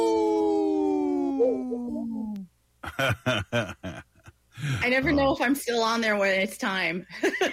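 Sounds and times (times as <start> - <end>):
person imitating a wolf pup howl: 0.0 - 2.5
laughter: 2.8 - 5.3
speech: 3.0 - 3.8, 4.9 - 7.5
quick choppy vocal bursts: 4.6 - 5.4.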